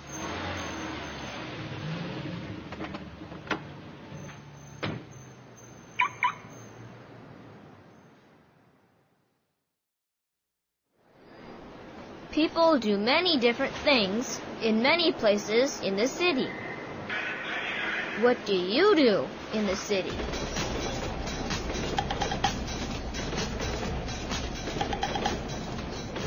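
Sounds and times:
car engine rumbling in a parking garage: 0:00.0 - 0:08.6, 0:20.1 - 0:26.2
traffic noise: 0:00.0 - 0:09.4, 0:11.1 - 0:26.2
speech: 0:12.4 - 0:16.6, 0:18.2 - 0:20.7.

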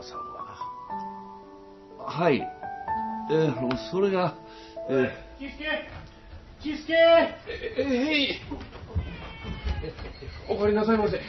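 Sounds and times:
speech: 0:02.1 - 0:02.6, 0:03.3 - 0:08.8, 0:09.8 - 0:11.2
kitten meowing: 0:09.0 - 0:09.9.

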